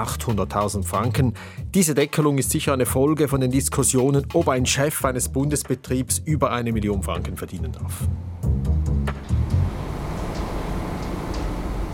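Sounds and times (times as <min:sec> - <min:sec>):
speech: 0:00.0 - 0:08.4
train in motion heard from inside the carriage: 0:08.2 - 0:11.9
heavy rhythmic train clunks: 0:09.0 - 0:11.9.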